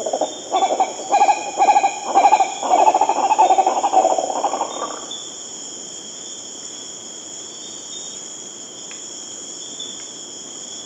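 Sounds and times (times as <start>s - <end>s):
green ibis calling in South America: 0.0s - 5.1s.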